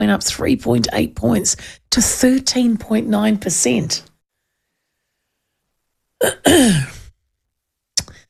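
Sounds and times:
speech: 0.1s - 4.1s, 6.2s - 7.0s
throat clearing: 6.2s - 7.0s.

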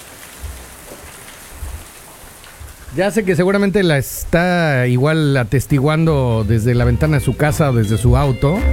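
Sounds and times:
steady rain: 0.0s - 8.7s
speech: 2.9s - 8.7s
faint low thumps: 4.1s - 8.7s.

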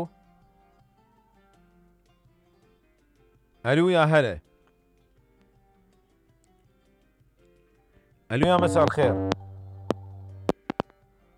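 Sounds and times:
speech: 3.6s - 4.5s, 8.3s - 9.4s
low buzzing telephone line tone after a dropped call: 8.4s - 10.8s.

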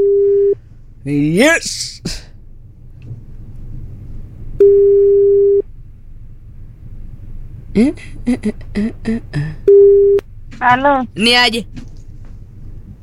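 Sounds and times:
speech: 1.0s - 2.3s, 7.8s - 9.8s, 10.6s - 11.8s
low rumble: 2.2s - 13.0s
ringback tone of an outgoing telephone call: 4.6s - 5.6s.

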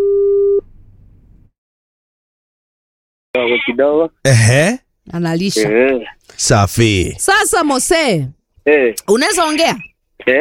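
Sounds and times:
telephone call tone: 0.0s - 0.6s
speech: 3.5s - 10.4s.

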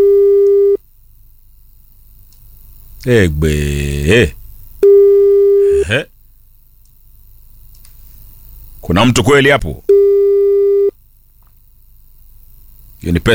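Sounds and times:
long steady telephone tone: 0.0s - 0.8s, 4.8s - 5.9s, 9.9s - 10.9s
speech: 3.0s - 4.4s, 5.9s - 6.1s, 8.8s - 9.9s, 13.0s - 13.3s.

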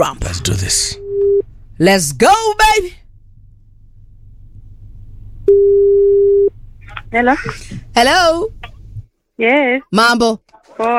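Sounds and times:
speech: 0.0s - 1.0s, 1.8s - 3.0s, 7.1s - 8.6s, 9.4s - 10.9s
faint hum: 0.0s - 10.9s
telephone line tone for a radio phone-in call: 5.5s - 6.5s.

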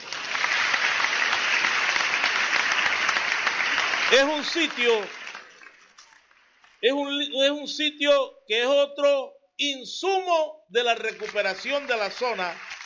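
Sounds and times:
crowd applauding: 0.0s - 6.0s, 11.0s - 12.8s
speech: 4.1s - 5.2s, 6.8s - 12.7s.

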